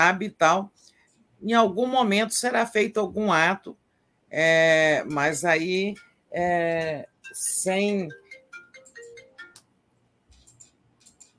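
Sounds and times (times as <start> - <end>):
speech: 0.0 - 8.2
mobile phone ringtone of bright electronic notes: 6.0 - 9.6.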